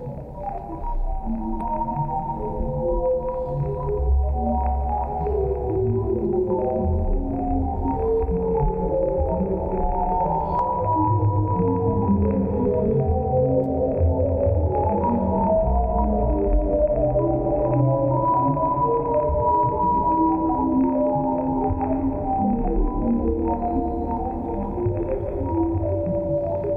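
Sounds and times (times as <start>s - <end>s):
low layered drone from sonified Hubble Telescope data: 0.0s - 26.7s.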